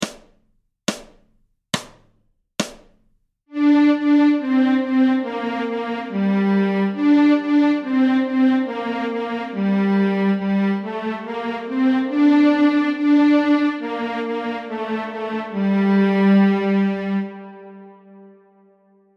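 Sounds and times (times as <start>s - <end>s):
fiddle playing a folk tune in G minor: 3.5s - 18.5s.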